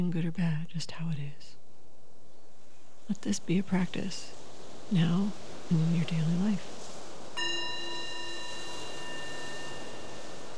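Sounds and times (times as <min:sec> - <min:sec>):
speech: 0:00.0 - 0:01.6, 0:03.1 - 0:06.8
single meditation bell struck and ringing: 0:07.4 - 0:10.5.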